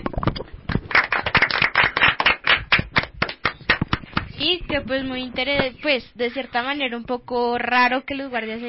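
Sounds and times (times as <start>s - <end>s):
small group clapping hands: 0.7s - 4.4s
speech: 4.4s - 8.6s.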